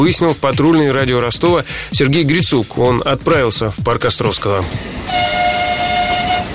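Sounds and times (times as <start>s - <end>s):
speech: 0.0s - 5.5s
low rumble of running children's railway steam train: 1.5s - 6.5s
small children's railway steam locomotive whistle blast: 4.9s - 6.5s.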